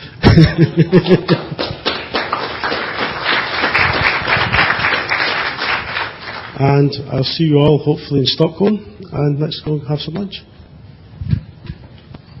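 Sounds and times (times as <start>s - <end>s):
audience laughing: 0.2s - 1.9s
speech: 0.4s - 1.5s, 6.6s - 10.5s
audience applause at the close of a meeting: 0.9s - 6.6s.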